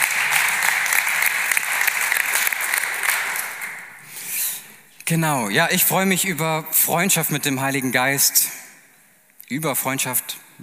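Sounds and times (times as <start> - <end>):
audience applauding: 0.0 - 4.1
speech: 5.1 - 8.6, 9.5 - 10.6.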